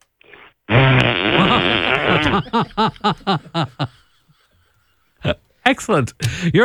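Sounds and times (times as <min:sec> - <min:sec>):
man on stage farting: 0:00.2 - 0:02.9
laughter: 0:01.2 - 0:05.4
speech: 0:02.3 - 0:04.0, 0:05.7 - 0:06.6.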